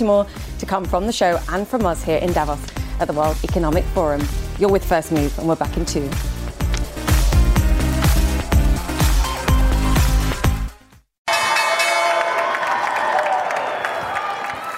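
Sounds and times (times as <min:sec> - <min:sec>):
speech: 0:00.0 - 0:06.4
upbeat music: 0:00.0 - 0:12.2
crowd cheering and applauding on a busy trading floor: 0:06.4 - 0:10.7, 0:11.3 - 0:14.7
stock exchange opening electric bell ringing: 0:11.3 - 0:12.6.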